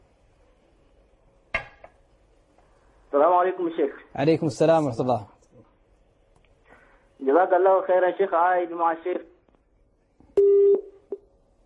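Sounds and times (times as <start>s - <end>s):
quiet hiss of telephone line noise: 0.0s - 10.4s
speech: 3.1s - 5.4s, 7.2s - 9.3s
steady electronic phone tone from cut-off telephone line: 10.4s - 11.0s.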